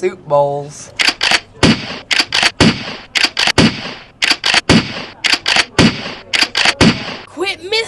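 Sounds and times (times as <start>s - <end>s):
shotgun blasts fired at an armadillo: 1.0s - 7.3s.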